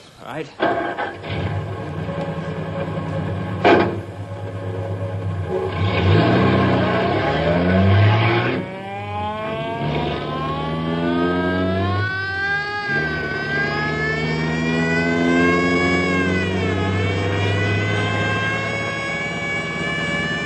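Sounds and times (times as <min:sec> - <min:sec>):
speech: 0:00.2 - 0:03.8
car engine accelerating on mountain road: 0:00.8 - 0:20.4
sharp bang: 0:03.5 - 0:04.2.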